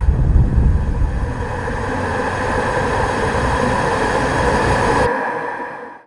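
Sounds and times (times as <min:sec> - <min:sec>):
dark rift cast: 0:00.0 - 0:06.0.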